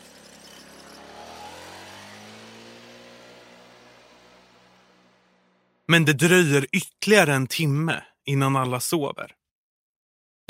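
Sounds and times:
small moped engine buzzing as it drives away: 0.0s - 5.8s
speech: 5.9s - 9.4s.

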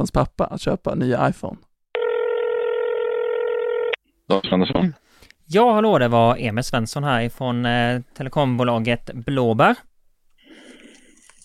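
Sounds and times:
speech: 0.0s - 1.7s, 4.3s - 9.9s
telephone ringing tone: 2.0s - 4.0s.

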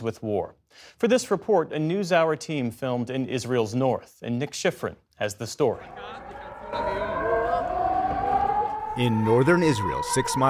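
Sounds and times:
speech: 0.0s - 7.0s, 9.0s - 10.4s
air raid warning siren wailing in northern Israel: 5.7s - 10.4s.

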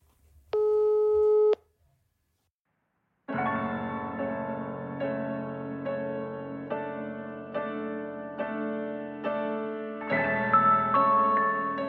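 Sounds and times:
telephone busy tone when calling a prison: 0.6s - 1.6s
music: 3.3s - 11.8s.

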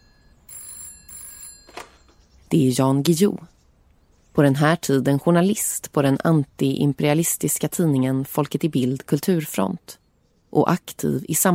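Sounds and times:
telephone bell ringing in a bookshop in Gothenburg: 0.0s - 2.2s
speech: 2.5s - 3.5s, 4.4s - 11.5s.

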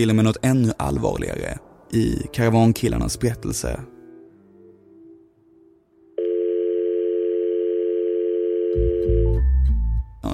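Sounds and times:
speech: 0.0s - 3.9s
telephone ringing tone on outgoing call: 6.2s - 9.4s.

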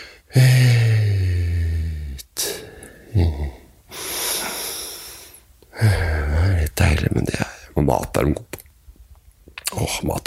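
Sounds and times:
deep breathing in and out: 0.0s - 6.5s
speech: 0.4s - 0.7s, 7.9s - 8.5s, 9.9s - 10.2s.

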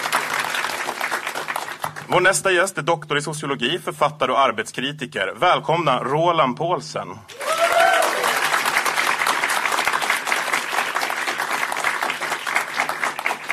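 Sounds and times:
large audience at a panel discussion event applauding: 0.0s - 2.2s, 7.3s - 13.5s
speech: 2.1s - 7.4s.

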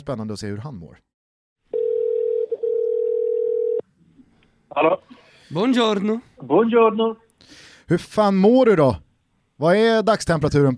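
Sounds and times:
speech: 0.0s - 1.1s, 4.7s - 9.0s, 9.6s - 10.7s
telephone ringing tone while placing a call: 1.7s - 3.8s.

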